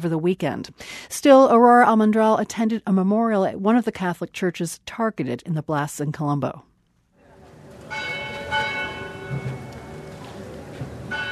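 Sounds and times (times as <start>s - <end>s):
speech: 0.0s - 6.7s
low murmur of outdoor ambience: 7.2s - 11.2s
church bells of a shrine tolling at a memorial: 7.4s - 11.2s.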